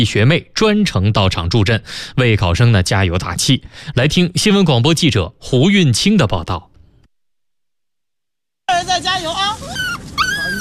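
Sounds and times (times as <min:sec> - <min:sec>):
speech: 0:00.0 - 0:06.7, 0:08.7 - 0:09.8
small dog whining and yipping: 0:09.6 - 0:10.6.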